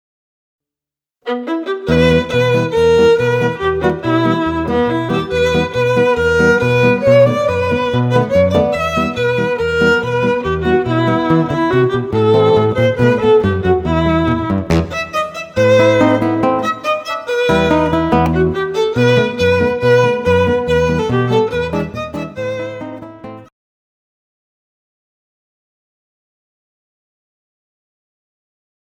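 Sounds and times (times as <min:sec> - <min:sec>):
guitar and violin duo: 0:01.2 - 0:23.5.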